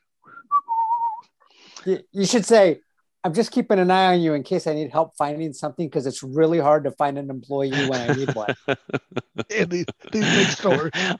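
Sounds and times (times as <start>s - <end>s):
person whistling a short casual tune: 0.3s - 1.3s
speech: 1.8s - 11.1s
laughter: 7.7s - 11.1s.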